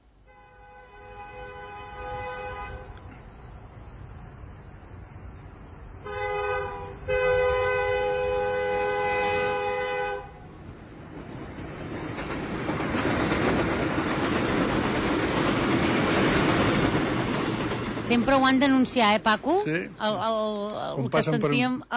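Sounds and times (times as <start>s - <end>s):
train rumbling past a level crossing with roar of wheels: 0.0s - 21.9s
train horn blowing long harmonic blasts at a level crossing: 0.2s - 3.2s, 6.0s - 10.6s
speech: 18.1s - 21.9s.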